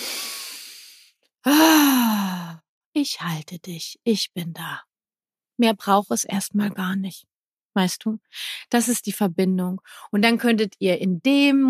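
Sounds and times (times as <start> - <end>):
deep breath in and out: 0.0 - 2.6
voiced falling sigh: 1.5 - 2.5
speech: 3.0 - 4.9, 5.6 - 11.6.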